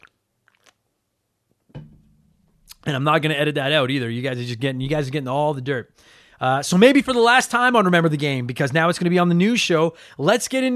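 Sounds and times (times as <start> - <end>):
person gulping cold beer: 0.0 - 0.8
wet mouth clicks from sipping cold beer: 0.0 - 0.8
speech: 2.9 - 10.7.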